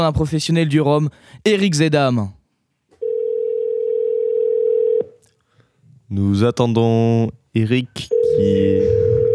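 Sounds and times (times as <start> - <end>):
speech: 0.0 - 2.4, 6.1 - 9.1
telephone ringing tone during a call: 3.0 - 5.0, 8.1 - 9.3.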